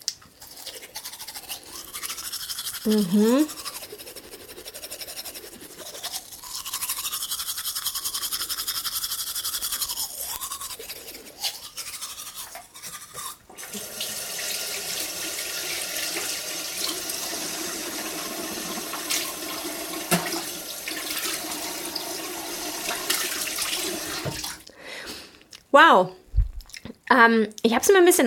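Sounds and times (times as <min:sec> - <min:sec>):
toothbrush scrubbing with baking soda toothpaste: 0:00.4 - 0:14.1
speech: 0:02.8 - 0:03.6, 0:25.8 - 0:26.2, 0:27.1 - 0:28.2
tap water running for rinsing toothpaste: 0:13.5 - 0:24.7.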